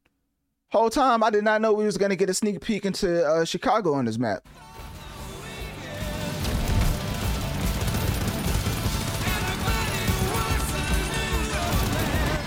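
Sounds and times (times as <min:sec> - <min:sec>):
speech: 0:00.7 - 0:04.7
rapid video game gunfire: 0:05.7 - 0:12.4.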